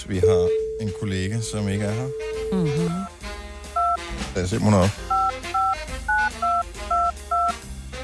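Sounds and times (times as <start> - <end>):
speech: 0.0 - 3.2, 4.4 - 5.2
touch-tone beeps of a phone being dialed: 0.2 - 3.1, 3.8 - 4.0, 5.1 - 7.5.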